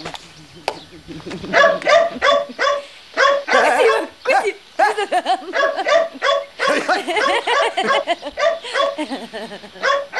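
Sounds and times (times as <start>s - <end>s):
laughter: 0.4s - 2.6s, 4.8s - 9.9s
dog barking and yipping: 1.5s - 4.2s, 5.4s - 10.1s.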